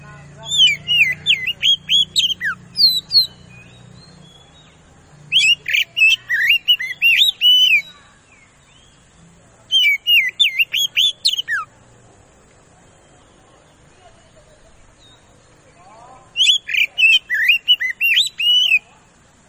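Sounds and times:
Oriental magpie-robin lure song: 0.0 - 11.8, 12.7 - 19.4
faint low hum: 0.0 - 19.4.

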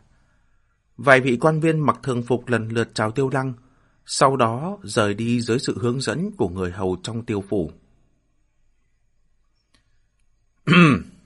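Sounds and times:
speech: 1.0 - 7.8, 10.7 - 11.1
throat clearing: 10.6 - 11.2.

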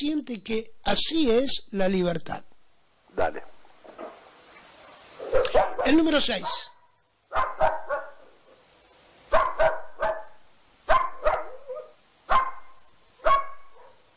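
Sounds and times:
speech: 0.0 - 2.5, 3.2 - 3.5, 5.3 - 6.7
dog barking: 4.8 - 8.7, 9.3 - 14.1.

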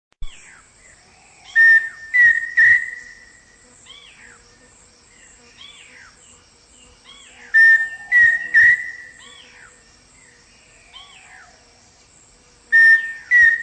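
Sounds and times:
bird giving soft arched chirps: 0.2 - 12.1
pheasant cuckoo Dromococcyx phasianellus whistled calls: 1.4 - 4.1, 7.1 - 9.5, 12.7 - 13.6.

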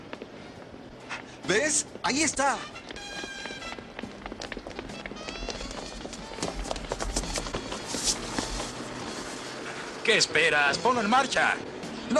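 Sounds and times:
rapid footsteps of people running toward a parked car: 0.0 - 9.6
speech: 1.4 - 3.3, 10.1 - 12.1.

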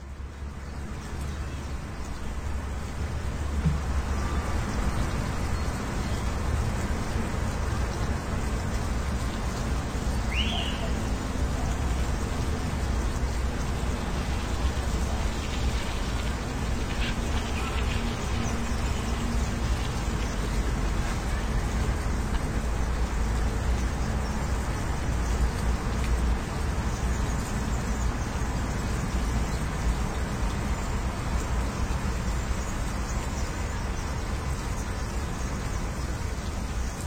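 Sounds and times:
river water flowing at a riverbank: 0.0 - 37.0
distant city car traffic: 0.9 - 26.6.

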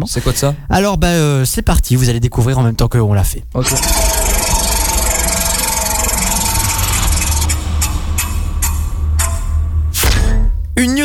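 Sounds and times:
speech: 0.0 - 4.4
loud steady rumbling noise: 3.5 - 11.0
spinning prize wheel ticking: 3.7 - 9.4.

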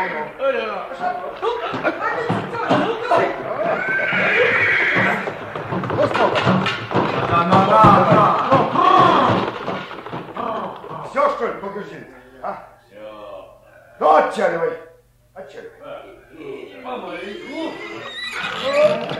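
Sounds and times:
speech: 0.0 - 2.9, 11.8 - 12.7, 14.3 - 14.8
horse whinnying and neighing while being led: 3.6 - 5.6, 17.2 - 19.1
thuds: 5.0 - 11.2.

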